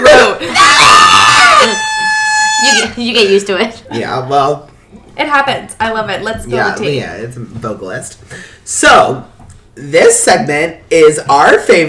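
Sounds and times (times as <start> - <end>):
loud excited scream: 0.0 - 3.0
speech: 3.0 - 11.8.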